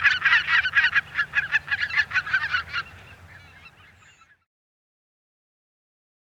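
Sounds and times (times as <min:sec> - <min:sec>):
Greater white-fronted goose giving high yelping honks: 0:00.0 - 0:04.3.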